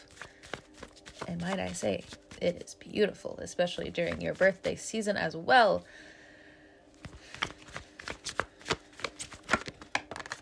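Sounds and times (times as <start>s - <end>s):
tarot cards being drawn from the deck and laid out: 0.0s - 2.5s, 3.8s - 4.8s, 7.0s - 10.4s
speech: 1.3s - 6.1s.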